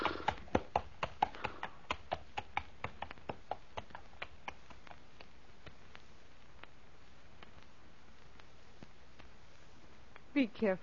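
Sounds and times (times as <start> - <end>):
horse hooves clip-clopping at a walking pace as horse is led to the stable: 0.0 - 10.4
speech: 10.4 - 10.8.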